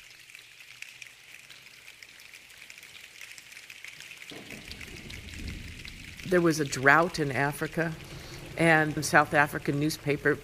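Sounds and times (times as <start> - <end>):
choir making rain sounds with hand motions during a song: 4.3 - 10.4
speech: 6.3 - 10.4.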